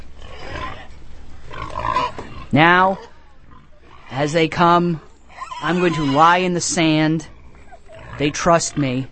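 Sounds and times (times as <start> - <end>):
pigs grunting in rough low snorts: 0.0 - 9.1
speech: 2.5 - 3.1, 4.1 - 7.3, 8.2 - 9.1.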